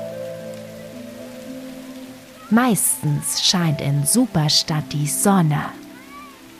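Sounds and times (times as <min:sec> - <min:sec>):
steady rain falling: 0:00.0 - 0:06.5
speech: 0:02.5 - 0:05.8.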